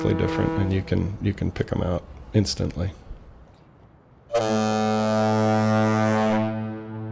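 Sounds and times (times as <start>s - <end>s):
bridge foghorn blast: 0.0s - 1.1s, 4.3s - 7.1s
speech: 0.0s - 3.0s, 4.3s - 4.8s.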